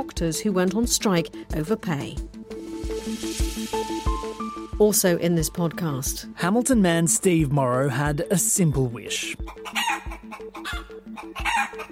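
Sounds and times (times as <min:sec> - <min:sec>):
speech: 0:00.0 - 0:02.4, 0:03.0 - 0:09.8
steady rhythmic beat with deep thumps: 0:00.1 - 0:11.9
chickens clucking and crowing: 0:09.5 - 0:11.9.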